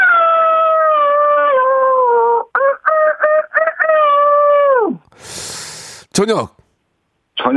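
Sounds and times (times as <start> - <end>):
person imitating a rooster crowing at dawn: 0.0 - 6.0
speech: 6.2 - 6.6.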